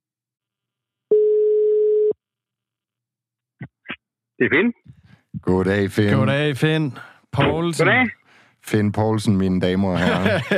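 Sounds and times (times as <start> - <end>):
telephone ringback tone of a call to a quiz contestant on Zealand Denmark: 1.1 - 2.2
speech: 4.4 - 10.5
laughter: 9.9 - 10.5.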